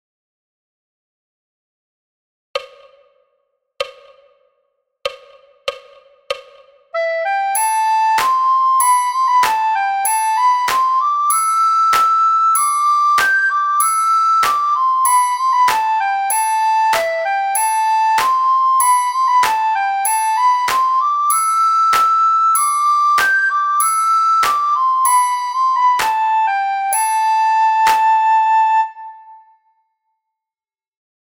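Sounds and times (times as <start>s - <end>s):
soprano bamboo flute at a calm tempo: 6.9s - 30.2s.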